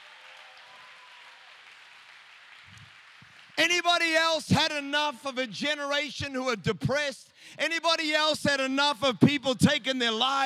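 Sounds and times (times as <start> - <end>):
large crowd clapping: 0.0 - 5.8
speech: 3.6 - 10.4.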